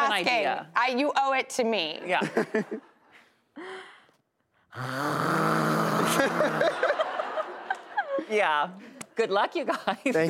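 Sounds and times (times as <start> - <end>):
speech: 0.2 - 2.9, 4.7 - 6.9, 8.3 - 10.2
laughter: 2.1 - 3.4, 5.9 - 8.5
person imitating loud snoring with voice: 4.7 - 6.6.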